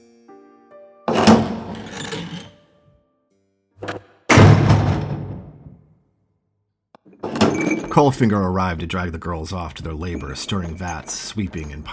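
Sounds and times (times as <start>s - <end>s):
heavy door thudding open: 1.1s - 2.4s, 3.8s - 5.8s
speech: 8.0s - 11.9s.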